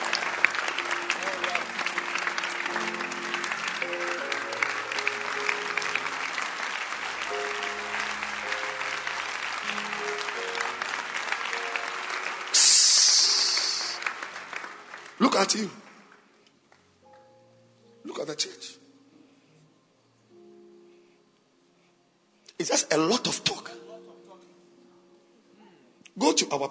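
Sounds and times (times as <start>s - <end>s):
large crowd clapping: 0.0s - 16.9s
soft musical backdrop: 0.0s - 26.7s
speech: 15.4s - 15.8s, 18.4s - 18.8s, 22.6s - 23.8s.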